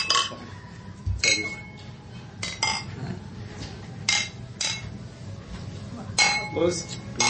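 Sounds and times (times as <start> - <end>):
beer glasses clinking in a toast: 0.0 - 0.5, 1.2 - 1.8, 2.4 - 3.0, 6.2 - 7.2
faint low murmuring: 0.0 - 7.2.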